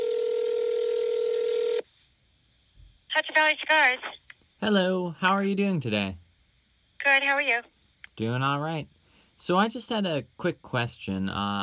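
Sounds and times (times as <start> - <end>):
steady electronic telephone tone of an outgoing call: 0.0 - 1.8
speech: 3.4 - 6.2, 7.0 - 11.6.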